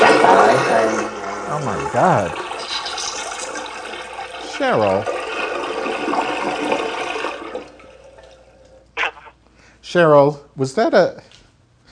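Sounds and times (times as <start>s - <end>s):
toilet flushing: 0.0s - 8.9s
toilet water draining with a gurgle: 0.0s - 9.3s
speech: 1.6s - 2.5s, 4.6s - 5.2s, 9.9s - 11.3s.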